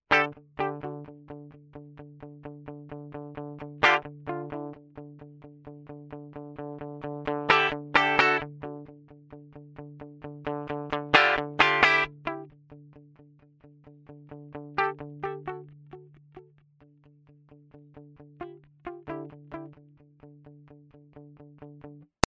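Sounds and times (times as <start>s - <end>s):
British crunch guitar tone with delay: 0.1s - 12.5s, 14.1s - 16.5s, 17.6s - 19.8s.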